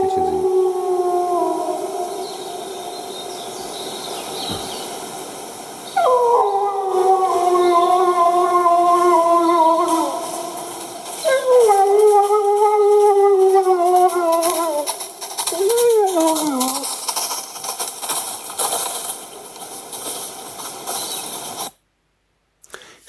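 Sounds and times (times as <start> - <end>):
wolf howling at middle distance: 0.0 - 4.0, 5.8 - 17.0.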